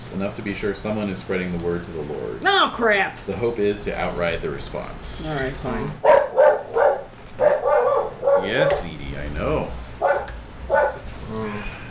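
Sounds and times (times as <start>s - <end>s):
speech: 0.1s - 6.1s
dog barking: 6.0s - 8.8s, 10.0s - 11.0s.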